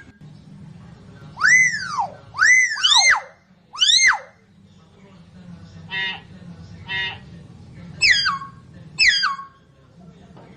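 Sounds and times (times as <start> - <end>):
lovebird calls used as a lure: 1.4 - 4.4, 5.9 - 6.2, 6.9 - 7.2, 8.0 - 9.6.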